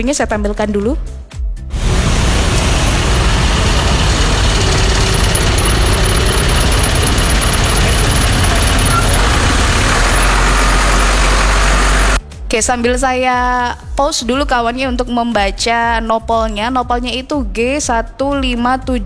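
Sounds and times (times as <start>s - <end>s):
speech: 0.0s - 1.4s, 12.6s - 19.0s
traffic engine rumble and road roar on a narrow street: 1.7s - 12.2s.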